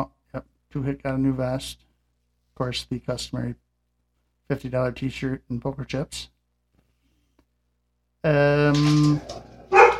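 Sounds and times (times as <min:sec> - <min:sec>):
speech: 0:00.0 - 0:01.8, 0:02.6 - 0:03.6, 0:04.5 - 0:06.4, 0:08.2 - 0:09.5
dogs barking with howling and sharp barks: 0:09.2 - 0:09.9.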